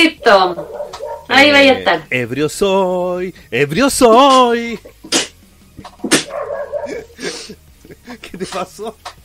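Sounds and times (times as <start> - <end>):
speech: 0.0 - 6.2, 8.3 - 9.2
dog barking sharp and breathy: 0.1 - 1.4, 6.1 - 7.1
dog giving a short whiny yelp: 0.2 - 1.6, 6.2 - 7.1
laughter: 6.7 - 8.7.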